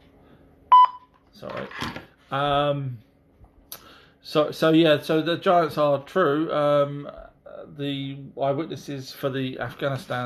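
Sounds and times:
electronic phone beeps from an incoming call: 0.7s - 1.1s
speech: 1.4s - 3.1s, 4.2s - 10.2s.

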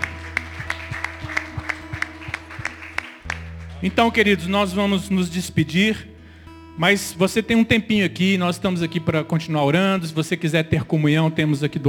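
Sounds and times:
audience clapping in a steady even rhythm: 0.0s - 4.4s
speech: 3.8s - 6.1s, 6.8s - 11.8s.

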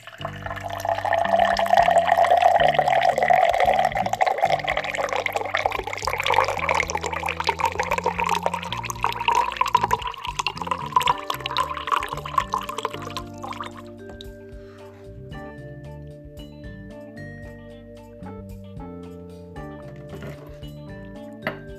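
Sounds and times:
water pouring into a glass: 0.0s - 14.3s.

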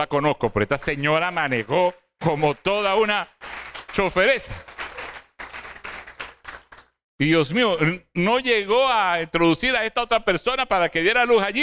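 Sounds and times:
speech: 0.0s - 4.7s, 7.2s - 11.6s
applause from a small group: 0.8s - 7.0s.

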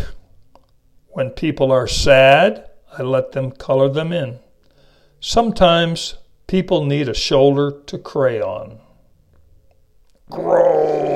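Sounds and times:
speech: 1.2s - 4.4s, 5.2s - 8.8s, 10.3s - 11.1s
person groaning: 10.3s - 11.1s.

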